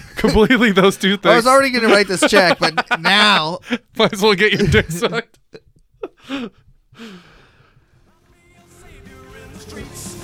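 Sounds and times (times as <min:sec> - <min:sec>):
laughter: 0:00.0 - 0:06.5
speech: 0:00.2 - 0:05.6, 0:06.3 - 0:07.2
heavy breathing: 0:03.6 - 0:04.0, 0:06.2 - 0:08.1.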